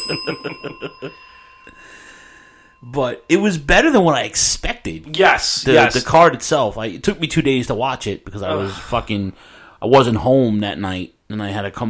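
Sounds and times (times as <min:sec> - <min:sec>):
bell ringing in rapid strikes: 0:00.0 - 0:03.4
speech: 0:00.1 - 0:02.0, 0:02.8 - 0:11.8.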